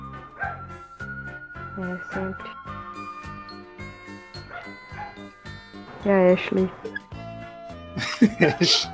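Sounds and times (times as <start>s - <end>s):
several dogs barking: 0.2s - 0.8s, 4.4s - 5.4s
higher dog yips: 0.4s - 0.6s, 4.5s - 5.3s
speech: 1.8s - 2.7s, 6.0s - 7.0s, 8.2s - 8.9s
laughter: 8.0s - 8.9s.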